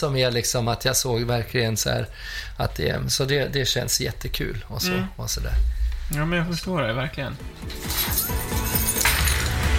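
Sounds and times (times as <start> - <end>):
speech: 0.0 - 9.0
bunch of keys tossed onto a table: 7.6 - 9.6.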